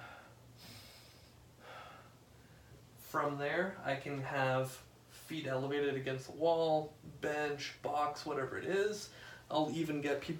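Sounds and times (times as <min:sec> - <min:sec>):
slow deep diaphragmatic breathing: 0:00.0 - 0:02.9, 0:09.1 - 0:09.5
speech: 0:03.1 - 0:10.3.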